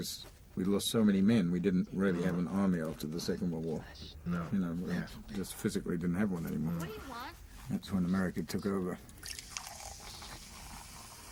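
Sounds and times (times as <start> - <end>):
speech: 0.0 - 9.4
Coke pouring from a can with fizzing bubbles: 9.2 - 11.3.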